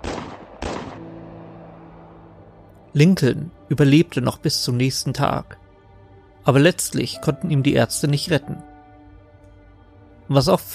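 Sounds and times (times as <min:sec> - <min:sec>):
gunshots: 0:00.0 - 0:01.3
speech: 0:02.9 - 0:05.6, 0:06.4 - 0:08.7, 0:10.3 - 0:10.7.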